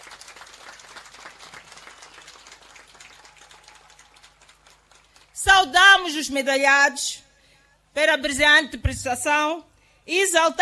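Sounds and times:
audience applauding: 0:00.0 - 0:05.4
speech: 0:05.4 - 0:07.2, 0:08.0 - 0:10.5.

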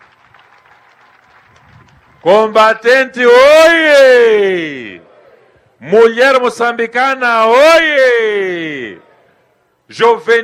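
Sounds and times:
audience applause honoring fighters during a public address in Mozambique: 0:00.0 - 0:02.4
speech: 0:02.2 - 0:05.0, 0:05.8 - 0:08.4, 0:09.9 - 0:10.4.

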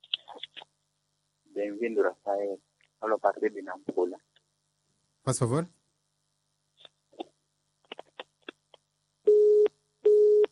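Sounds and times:
speech: 0:01.6 - 0:04.3, 0:05.2 - 0:05.8
telephone busy signal beeps after a call drops: 0:09.3 - 0:10.5.

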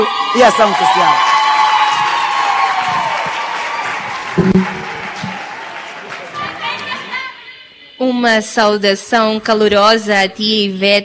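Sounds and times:
speech: 0:00.0 - 0:01.3, 0:08.0 - 0:11.0
crowd cheering: 0:00.0 - 0:07.4
large audience clapping: 0:00.6 - 0:07.1.

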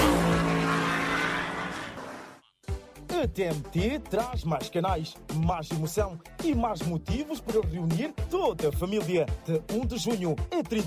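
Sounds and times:
drifting car engine roaring at a drift festival: 0:00.0 - 0:02.4
drifting car tires squealing: 0:00.0 - 0:02.4
speech: 0:03.2 - 0:10.8.

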